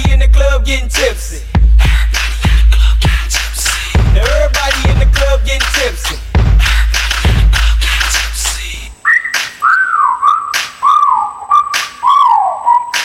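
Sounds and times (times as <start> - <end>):
loud thumping music: 0.0 - 8.8
speech: 0.7 - 1.6
person whistling at a woman: 9.0 - 13.0.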